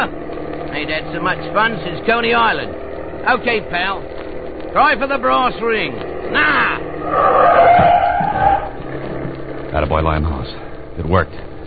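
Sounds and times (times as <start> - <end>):
low car engine rumble: 0.0 - 11.6
speech: 0.8 - 8.0, 9.7 - 11.5
car tires screeching in a U-turn: 6.3 - 9.2.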